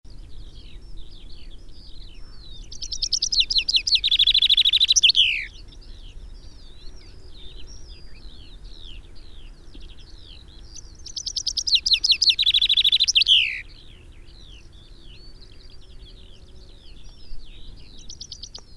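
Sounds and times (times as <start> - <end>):
Common chaffinch Fringilla coelebs singing: 0.1 - 18.7
quieter background bird chirps: 0.1 - 18.7.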